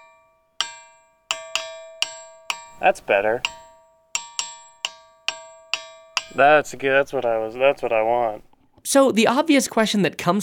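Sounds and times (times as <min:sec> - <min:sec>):
struck ringing rocks chiming like bells: 0:00.6 - 0:08.5
speech: 0:02.8 - 0:03.6, 0:06.4 - 0:10.4.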